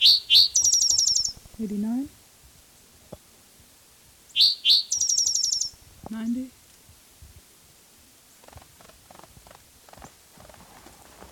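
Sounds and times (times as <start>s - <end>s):
bird singing chirps and a rapid trill: 0.0s - 1.4s, 4.3s - 5.8s
speech: 1.6s - 2.2s, 6.1s - 6.6s.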